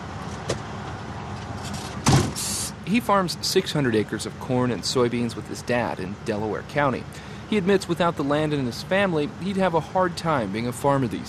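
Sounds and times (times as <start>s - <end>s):
18-wheeler vehicle rumble at an ethanol plant: 0.0s - 11.2s
18-wheeler truck cab door clunk as driver climbs in: 0.2s - 2.7s
speech: 2.9s - 11.2s.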